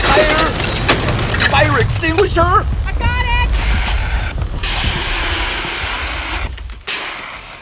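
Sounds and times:
leaf blower pull-start combustion engine sputtering and failing to catch: 0.0s - 7.6s
speech: 2.3s - 2.8s.

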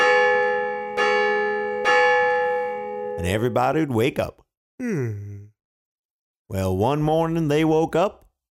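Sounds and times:
church bell ringing in the morning: 0.0s - 3.8s
speech: 3.2s - 5.5s, 6.5s - 8.2s.

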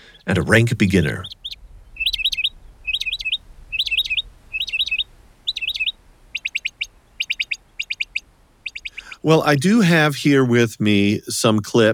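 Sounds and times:
mockingbird singing: 0.0s - 9.4s
speech: 0.2s - 1.4s, 9.2s - 11.9s.

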